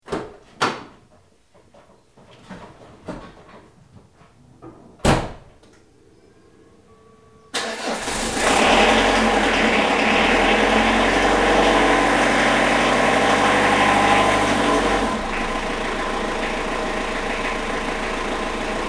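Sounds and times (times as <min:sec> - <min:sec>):
door in a garage: 0:00.0 - 0:01.1, 0:04.6 - 0:05.7
diesel engine starting in a garage: 0:07.5 - 0:18.8.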